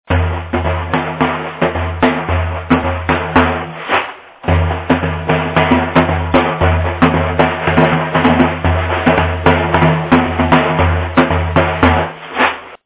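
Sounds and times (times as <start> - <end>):
daf frame drum: 0.1 - 12.8.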